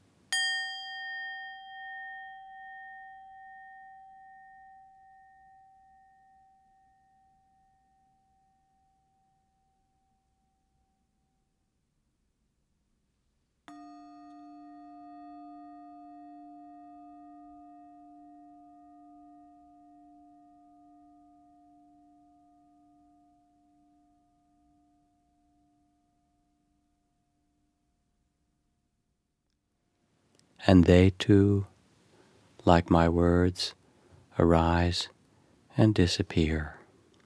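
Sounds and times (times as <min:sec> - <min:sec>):
bell ringing: 0:00.3 - 0:06.9
lower-toned bell sounding and sustaining: 0:00.3 - 0:10.5, 0:13.7 - 0:26.8
speech: 0:30.6 - 0:31.7, 0:32.7 - 0:33.8, 0:34.4 - 0:35.2, 0:35.8 - 0:36.8.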